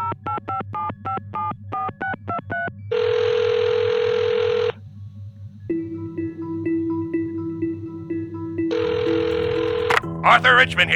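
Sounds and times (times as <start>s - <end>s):
desk phone buzzy electronic ringing: 0.0s - 4.8s, 5.7s - 10.9s
desk phone dialing beeps: 0.0s - 4.8s, 6.2s - 10.1s
speech: 10.3s - 10.9s.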